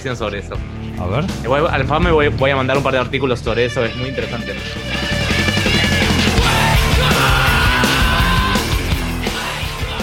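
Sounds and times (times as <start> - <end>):
speech: 0.0 - 5.3
heavy distorted instruments: 1.2 - 10.0
man screaming vocals in a loud dense song: 5.6 - 8.9.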